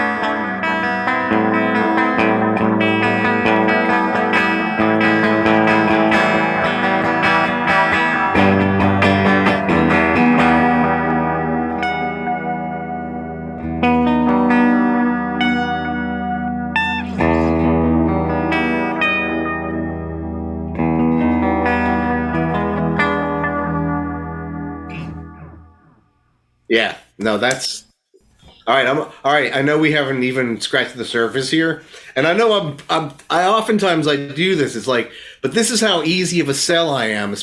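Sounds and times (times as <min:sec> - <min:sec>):
dark-toned electric guitar chords through a modulation pedal: 0:00.0 - 0:26.0
speech: 0:26.8 - 0:27.8, 0:28.7 - 0:37.4.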